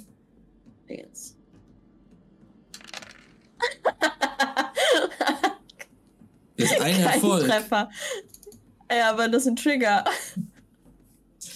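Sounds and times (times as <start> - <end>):
speech: 0.9 - 1.4, 6.6 - 8.2, 8.9 - 10.2
handful of dice rattling and clattering across a hard surface: 2.8 - 3.5
laughter: 3.6 - 5.6, 6.6 - 7.7.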